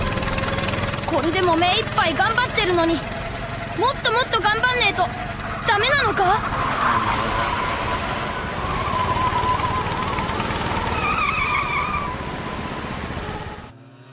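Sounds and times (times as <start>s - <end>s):
buzzing small go-kart engines racing by: 0.0s - 14.1s
speech: 1.1s - 3.2s, 3.8s - 7.7s.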